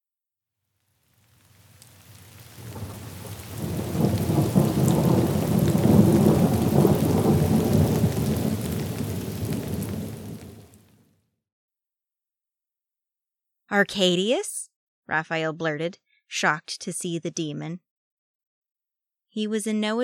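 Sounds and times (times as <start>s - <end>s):
heavy rain pouring: 0.9s - 11.0s
rolling thunder rumble: 2.1s - 10.9s
speech: 13.7s - 17.9s, 19.4s - 20.0s.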